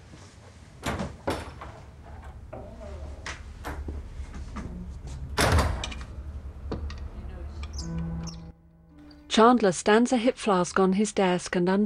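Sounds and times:
door shutting with a solid thud: 0:05.3 - 0:08.5
speech: 0:09.3 - 0:11.8.

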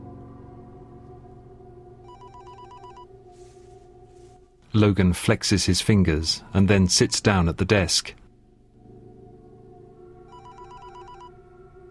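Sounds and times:
mobile phone ringing on a desk: 0:02.1 - 0:03.1, 0:10.3 - 0:11.4
speech: 0:04.7 - 0:08.2.

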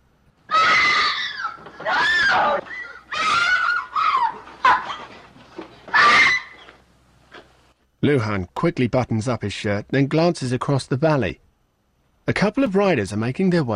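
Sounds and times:
woman screaming: 0:00.5 - 0:05.0, 0:05.9 - 0:06.6
speech: 0:08.1 - 0:11.4, 0:12.3 - 0:13.7.

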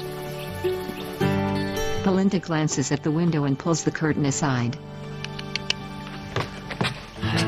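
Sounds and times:
horse hooves clip-clopping: 0:00.0 - 0:02.2, 0:05.2 - 0:07.4
speech: 0:02.0 - 0:05.0.

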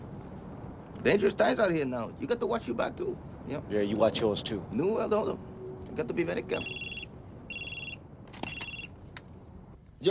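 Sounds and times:
speech: 0:01.0 - 0:06.9
cell phone ringing with a warbling electronic trill: 0:06.5 - 0:09.0.

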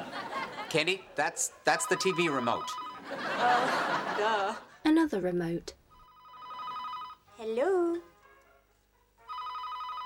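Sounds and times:
laughter: 0:00.0 - 0:04.8
speech: 0:00.7 - 0:05.8, 0:07.4 - 0:08.1
telephone ringing in electronic bursts: 0:01.7 - 0:04.0, 0:05.9 - 0:07.3, 0:09.3 - 0:10.0.

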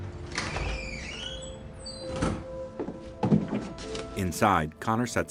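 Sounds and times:
apartment door creaking open: 0:00.2 - 0:02.7
speech: 0:04.3 - 0:05.2.

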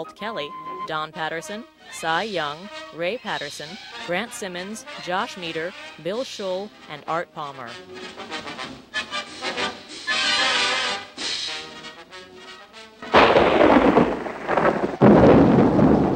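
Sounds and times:
speech: 0:00.0 - 0:08.4
thunder crashing in a nighttime rainstorm: 0:13.0 - 0:16.1
nighttime heavy rain slashing down: 0:13.1 - 0:16.1.

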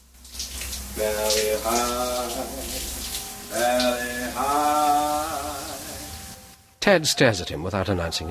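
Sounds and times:
shower spraying water: 0:00.0 - 0:06.6
person singing sustained gliding notes: 0:01.0 - 0:02.9, 0:03.5 - 0:06.2
speech: 0:01.0 - 0:02.9, 0:03.5 - 0:05.4, 0:06.9 - 0:08.2.

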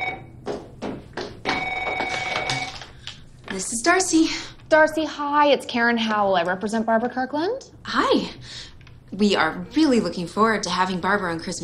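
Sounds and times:
telephone ringing: 0:00.0 - 0:00.4, 0:01.5 - 0:03.0
speech: 0:03.6 - 0:08.5, 0:09.2 - 0:11.6.

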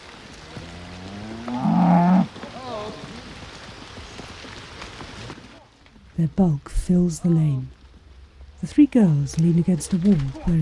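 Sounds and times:
steady patter of rain on a farm lane: 0:00.0 - 0:10.5
cow mooing as a herd is driven along a farm lane: 0:00.4 - 0:03.1
speech: 0:06.2 - 0:07.8, 0:08.6 - 0:10.5.

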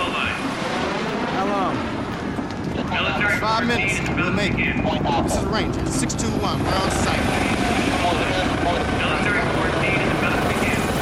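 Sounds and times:
helicopter landing on a jetty: 0:00.0 - 0:11.0
helicopter rotor and engine roar: 0:00.0 - 0:11.0
speech: 0:03.4 - 0:09.4.

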